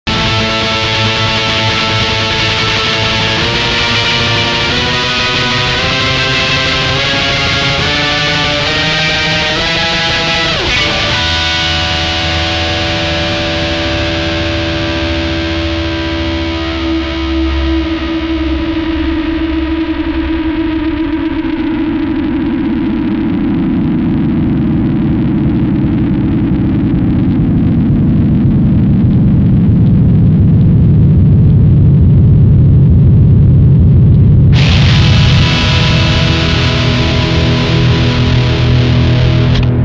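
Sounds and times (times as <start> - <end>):
Maxon AD999 delay pedal feedback: 0.0 - 39.8.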